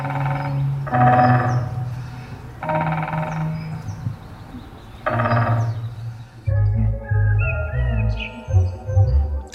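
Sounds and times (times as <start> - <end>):
bird singing quick high chirps and whistles: 0.0 - 9.2
loud low rumbling background: 0.0 - 9.5
speech: 0.9 - 1.2.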